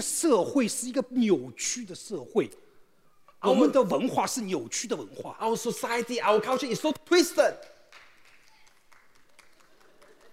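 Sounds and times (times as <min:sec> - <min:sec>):
speech: 0:00.0 - 0:02.6, 0:03.4 - 0:07.7
audience clapping: 0:06.3 - 0:06.9, 0:07.5 - 0:10.3.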